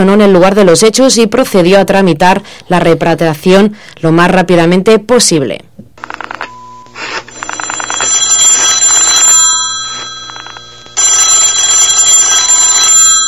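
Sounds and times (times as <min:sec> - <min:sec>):
speech: 0:00.0 - 0:06.3
telephone ringing with an incoming call: 0:06.0 - 0:13.2.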